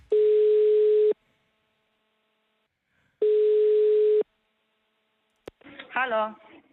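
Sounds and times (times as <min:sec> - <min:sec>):
telephone ringback tone heard through a phone line: 0:00.1 - 0:01.2, 0:03.2 - 0:04.2
speech: 0:06.0 - 0:06.5.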